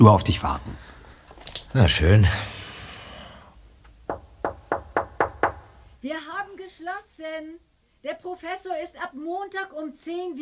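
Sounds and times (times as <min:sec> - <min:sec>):
speech: 0:00.0 - 0:00.9, 0:01.7 - 0:02.6, 0:06.0 - 0:10.4
firm knocks on a professor's office door: 0:04.0 - 0:06.0.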